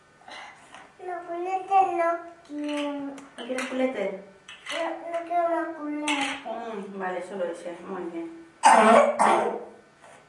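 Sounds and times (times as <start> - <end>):
speech: 1.2 - 9.7
child with an ongoing cough coughing: 8.6 - 9.8.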